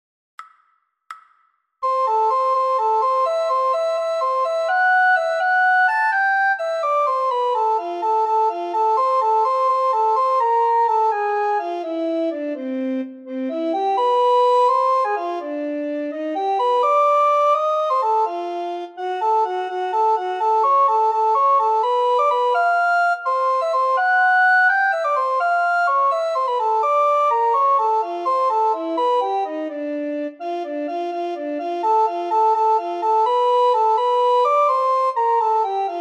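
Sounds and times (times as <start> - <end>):
descant recorder playing: 1.8 - 35.9.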